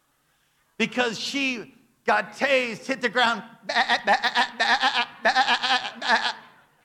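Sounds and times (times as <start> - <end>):
speech: 0.8 - 6.3
human voice imitating goat bleats: 3.7 - 6.6.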